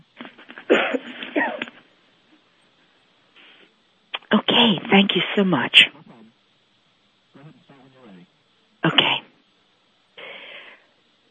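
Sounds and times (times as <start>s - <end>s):
person coughing: 0.6s - 1.8s
breathing: 3.4s - 3.7s, 10.2s - 11.0s
speech: 4.7s - 6.0s.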